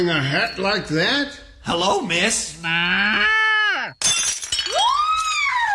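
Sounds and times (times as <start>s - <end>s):
speech: 0.0s - 3.4s
figurine of a girl milking a cow shattering on the floor: 4.0s - 5.6s.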